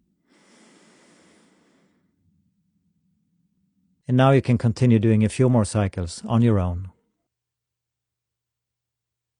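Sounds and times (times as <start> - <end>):
slow controlled inhale through the nose: 0.3 - 2.1
speech: 4.1 - 7.0.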